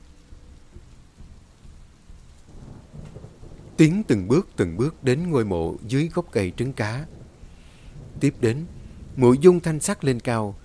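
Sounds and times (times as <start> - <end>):
steady rain in a downpour: 0.0 - 10.6
low thunder-like rumbling: 2.5 - 10.6
speech: 3.8 - 7.2, 8.2 - 10.6.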